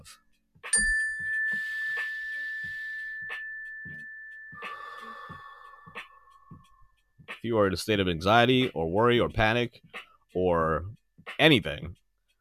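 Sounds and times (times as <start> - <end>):
speech: 0.0 - 0.2, 7.4 - 12.0
mindfulness bell being struck: 0.7 - 5.1.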